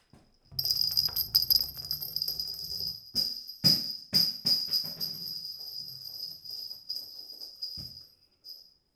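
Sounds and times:
rattle ball rolling from the right and falling to the floor: 0:00.5 - 0:03.4, 0:04.5 - 0:08.6.

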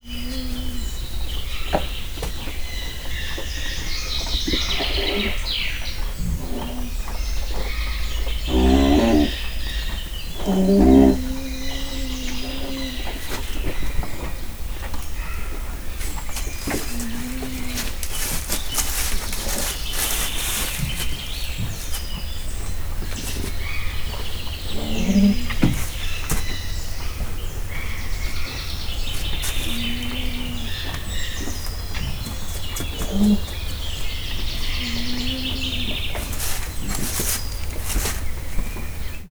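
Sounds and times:
southern cassowary whining softly with closed beak in a zoo: 0:00.0 - 0:03.2, 0:04.1 - 0:39.2.

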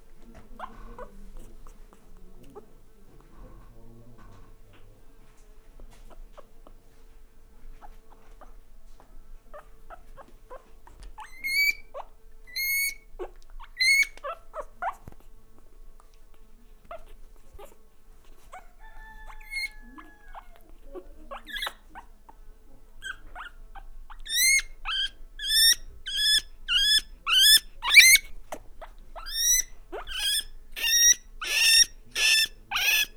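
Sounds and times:
guinea fowl calling in a farmyard: 0:12.5 - 0:13.0, 0:18.7 - 0:20.7, 0:24.2 - 0:28.4, 0:29.2 - 0:33.1.

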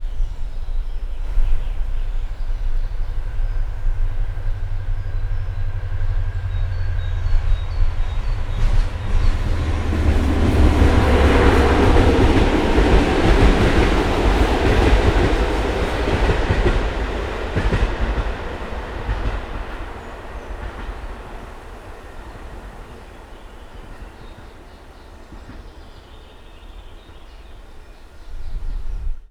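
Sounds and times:
large train heard from outside: 0:00.0 - 0:29.2.

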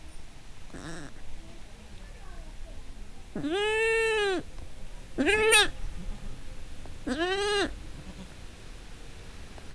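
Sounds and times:
wind in a farmyard: 0:00.0 - 0:09.7
goat kid bleating in a farmyard: 0:00.7 - 0:01.6, 0:02.5 - 0:08.4.

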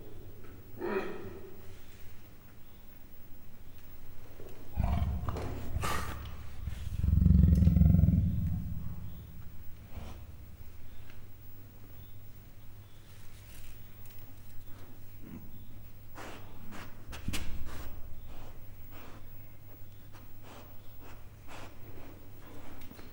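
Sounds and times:
captive male and female leopards growling in a zoo in Miskolc: 0:04.2 - 0:11.3.

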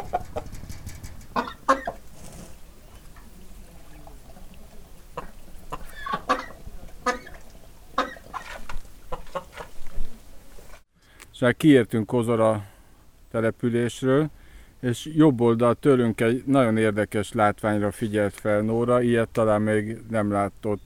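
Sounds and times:
rooster clucking: 0:00.0 - 0:09.8
faint outdoor noise: 0:00.0 - 0:20.8
speech: 0:11.4 - 0:12.7, 0:13.3 - 0:20.8.

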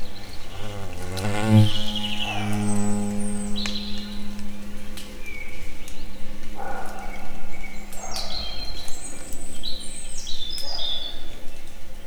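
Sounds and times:
insects in nature: 0:00.0 - 0:08.3.

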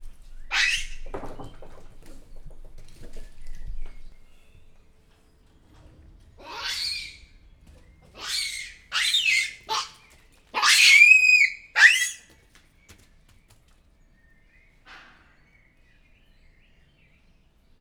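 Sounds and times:
hamadryas baboon screaming in a zoo: 0:00.5 - 0:01.0, 0:06.4 - 0:07.2, 0:08.2 - 0:10.0, 0:10.6 - 0:12.2.

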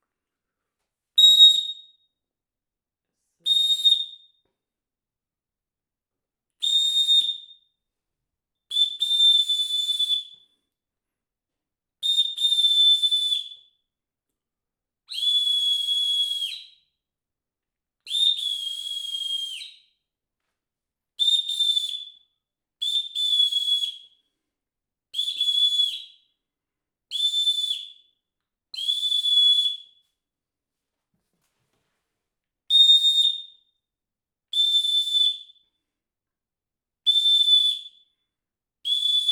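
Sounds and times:
whistle: 0:01.2 - 0:02.2, 0:03.4 - 0:04.6, 0:06.6 - 0:07.9, 0:08.6 - 0:10.7, 0:12.0 - 0:13.9, 0:15.1 - 0:17.0, 0:18.0 - 0:20.1, 0:21.2 - 0:24.4, 0:25.1 - 0:26.4, 0:27.1 - 0:30.2, 0:32.7 - 0:33.8, 0:34.5 - 0:35.9, 0:37.0 - 0:39.3.

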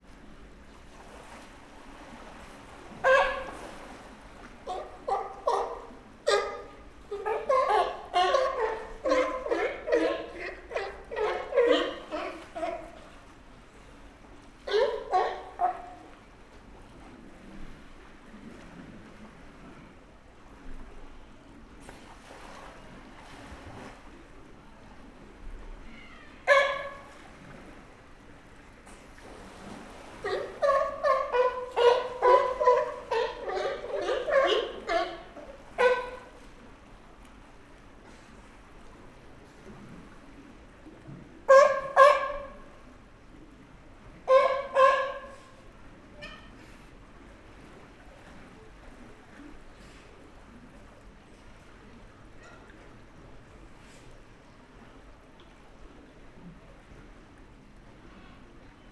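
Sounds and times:
California sea lion calling at a zoo: 0:02.8 - 0:16.3, 0:25.8 - 0:27.4, 0:30.0 - 0:36.9, 0:41.4 - 0:43.0, 0:44.0 - 0:46.9.

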